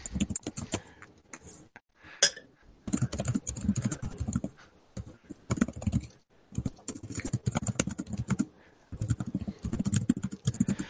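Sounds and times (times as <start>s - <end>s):
rapid typing on a computer keyboard into an online chat: 0.0s - 0.9s, 2.9s - 4.5s, 5.5s - 10.8s.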